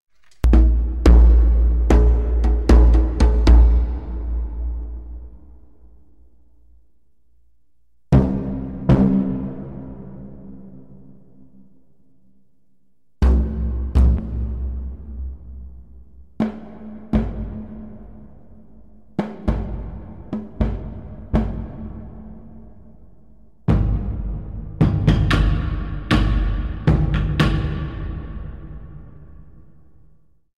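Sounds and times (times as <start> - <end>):
percussion: 0.1 - 6.2, 13.2 - 30.2.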